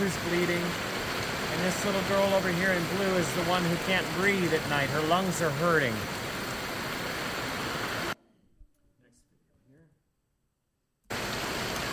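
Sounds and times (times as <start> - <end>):
heavy rain pouring down: 0.0 - 8.2, 11.1 - 11.9
speech: 0.1 - 0.9, 1.6 - 6.2.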